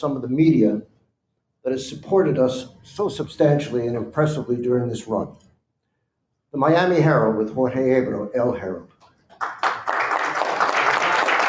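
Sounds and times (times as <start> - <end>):
speech: 0.0 - 0.9, 1.6 - 5.4, 6.5 - 8.9
audience applause with dense clapping from many hands: 9.4 - 11.4.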